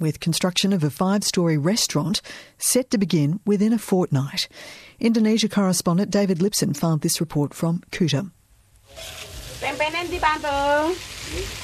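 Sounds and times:
speech: 0.0s - 11.6s
chicken deep-frying in hot oil at a makeshift kiosk: 8.8s - 11.6s.

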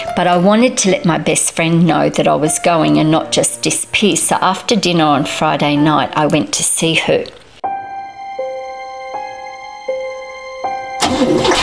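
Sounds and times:
speech: 0.2s - 7.4s
car engine cranking but failing to start: 11.0s - 11.6s.

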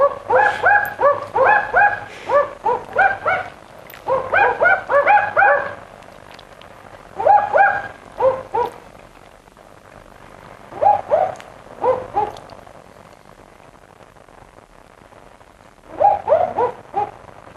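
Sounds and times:
male and female barking owls duetting: 0.0s - 5.9s, 7.0s - 8.9s, 10.7s - 12.6s, 15.9s - 17.2s.

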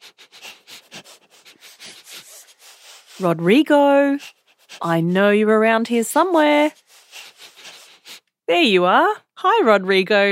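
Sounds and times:
person sniffing the air: 0.0s - 3.2s, 4.2s - 4.8s, 6.7s - 8.2s
speech: 3.2s - 6.8s, 8.5s - 10.2s.

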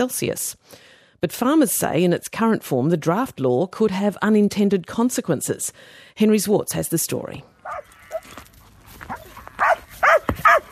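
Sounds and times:
speech: 0.0s - 7.9s
dog barking: 7.6s - 8.2s, 9.1s - 10.7s
snuffling: 7.6s - 10.7s.

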